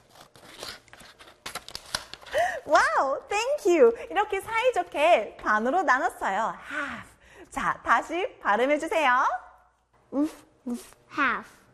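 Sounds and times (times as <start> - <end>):
scissors cutting colored paper in half: 0.0 - 2.3
speech: 2.6 - 9.4, 10.1 - 11.6.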